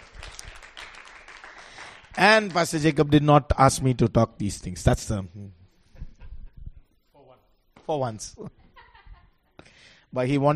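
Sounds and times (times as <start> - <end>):
audience clapping hands in steady dense applause: 0.0 - 3.3
speech: 2.2 - 5.6, 7.9 - 8.6, 10.1 - 10.5
laughter: 5.8 - 7.0, 8.4 - 9.6.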